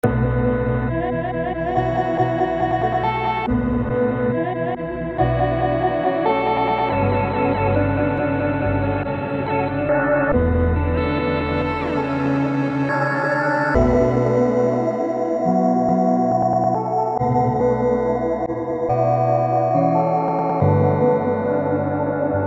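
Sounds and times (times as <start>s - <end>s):
glitchy chroma loop: 0.0s - 22.4s.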